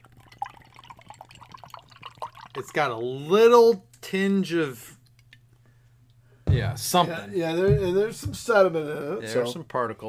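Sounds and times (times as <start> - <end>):
8% beer with zero IBUs poured into a glass: 0.0 - 2.9
speech: 2.6 - 5.0, 6.6 - 10.0.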